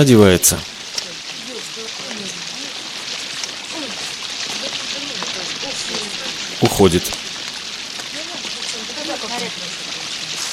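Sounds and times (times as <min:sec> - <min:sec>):
speech: 0:00.0 - 0:00.8, 0:06.6 - 0:07.2
heavy rain pouring: 0:00.0 - 0:10.5
voices murmuring faintly: 0:00.6 - 0:10.5.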